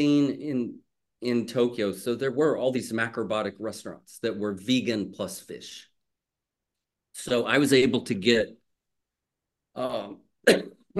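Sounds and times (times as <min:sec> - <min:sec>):
speech: 0:00.0 - 0:05.9, 0:07.2 - 0:08.6, 0:09.8 - 0:10.9
person coughing in short rough bursts: 0:10.4 - 0:10.9.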